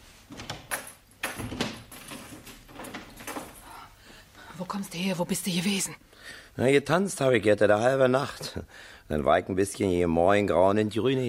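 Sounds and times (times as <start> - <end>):
low hiss: 0.0 - 11.2
door being shut: 0.3 - 3.8
speech: 4.6 - 11.2.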